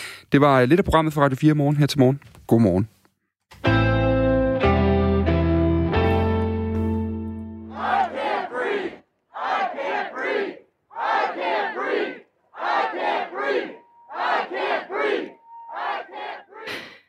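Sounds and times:
speech: 0:00.3 - 0:03.8
sustained organ-like musical chords: 0:03.7 - 0:08.4, 0:12.9 - 0:16.6
protest crowd chanting a slogan outside White House: 0:07.7 - 0:16.7.

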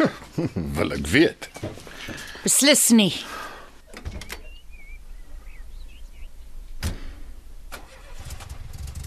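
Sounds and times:
laughter: 0:00.0 - 0:00.9
speech: 0:00.0 - 0:01.8, 0:02.4 - 0:03.4
faint birds chirping: 0:00.0 - 0:07.6
car engine starting and driving off: 0:07.7 - 0:09.0.

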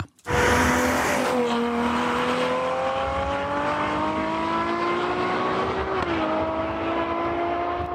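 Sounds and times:
6.5-litre V12 sports car engine roaring and accelerating through gears: 0:00.2 - 0:07.9.

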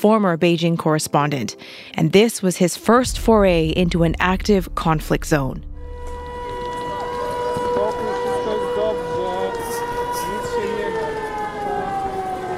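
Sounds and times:
speech: 0:00.0 - 0:05.7
air raid siren wailing: 0:03.0 - 0:12.5.

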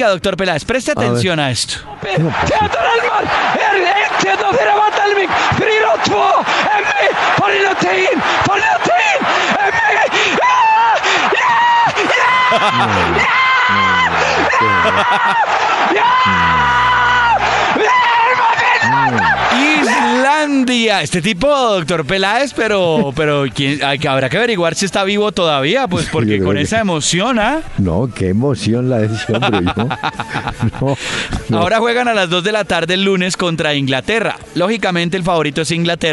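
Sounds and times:
speech: 0:00.0 - 0:16.8, 0:18.8 - 0:36.1
laughter: 0:02.0 - 0:17.6, 0:18.3 - 0:20.3, 0:22.6 - 0:23.8, 0:29.0 - 0:31.0
Icelandic television sports commentator screaming over a goal: 0:02.1 - 0:20.6.

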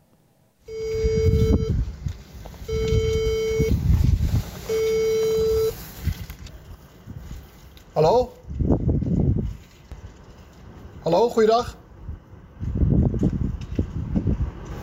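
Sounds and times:
low rumble of street noise: 0:00.3 - 0:14.8
doorbell intercom electronic buzzing tones: 0:00.7 - 0:01.8, 0:02.7 - 0:03.8, 0:04.7 - 0:05.8
speech: 0:11.2 - 0:11.8.

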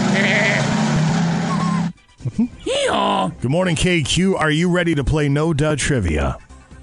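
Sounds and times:
billy goat bleating: 0:00.1 - 0:00.8
laughter: 0:01.6 - 0:02.7
speech: 0:02.4 - 0:06.5.

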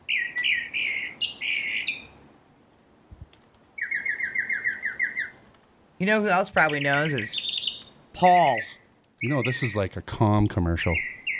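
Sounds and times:
red-winged blackbird calls: 0:00.0 - 0:02.1, 0:03.8 - 0:05.4, 0:06.6 - 0:09.8, 0:10.8 - 0:11.3
speech: 0:06.0 - 0:07.4, 0:08.2 - 0:11.1.

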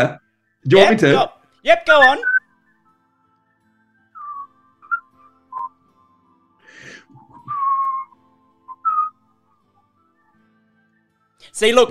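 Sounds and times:
speech: 0:00.0 - 0:02.3, 0:11.6 - 0:11.8
person whistling a short wavering tune: 0:02.2 - 0:02.9, 0:04.0 - 0:06.1, 0:06.8 - 0:11.1.

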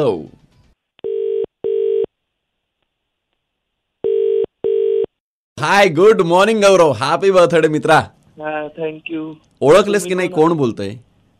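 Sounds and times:
speech: 0:00.0 - 0:00.4, 0:05.6 - 0:11.1
ringback tone of an outgoing phone call: 0:01.0 - 0:02.1, 0:04.0 - 0:05.1.

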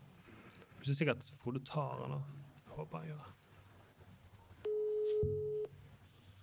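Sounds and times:
speech: 0:00.8 - 0:03.4
telephone ringing tone through a speakerphone: 0:04.7 - 0:05.7.

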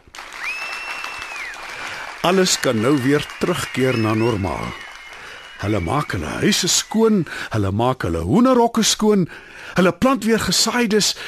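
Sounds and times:
crowd of villagers cheering with joy and clapping: 0:00.0 - 0:07.5
shrill whistle: 0:00.3 - 0:07.3
speech: 0:02.2 - 0:04.8, 0:05.6 - 0:11.2.

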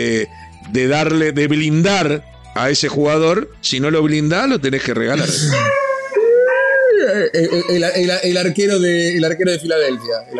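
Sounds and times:
speech: 0:00.0 - 0:05.9, 0:07.0 - 0:10.3
dogs howling, whimpering and yelping: 0:05.2 - 0:08.3.

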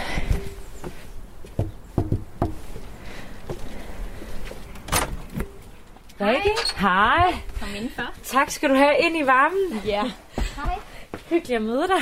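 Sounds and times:
knocking on a door: 0:01.6 - 0:02.6
speech: 0:06.2 - 0:12.0.

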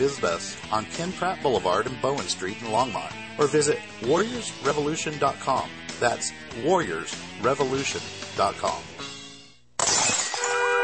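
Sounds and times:
speech: 0:00.0 - 0:09.0
tinkling glass shards: 0:09.8 - 0:10.6
window glass shattering: 0:09.8 - 0:10.8.

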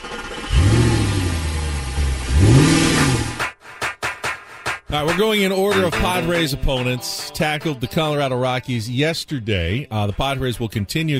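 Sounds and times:
truck engine starting, revving and idling: 0:00.0 - 0:03.4
speech: 0:04.9 - 0:11.1.

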